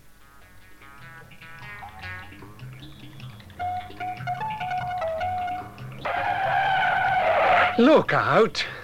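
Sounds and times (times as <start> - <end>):
car tires screeching: 5.2 - 8.1
car engine roaring at speed through traffic: 5.3 - 7.8
speech: 7.8 - 8.8.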